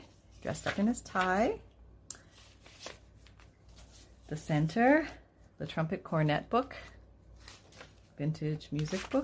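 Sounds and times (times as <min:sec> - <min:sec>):
pages of a Victorian-style junk journal being flipped: 0:00.0 - 0:01.4, 0:02.2 - 0:04.3, 0:07.4 - 0:08.1, 0:08.7 - 0:09.2
speech: 0:00.4 - 0:01.7, 0:04.3 - 0:06.9, 0:08.2 - 0:09.2.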